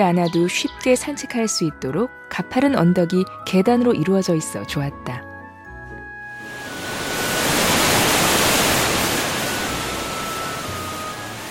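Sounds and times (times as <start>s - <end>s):
speech: 0.0s - 5.3s
waterfall rushing water: 6.4s - 11.4s.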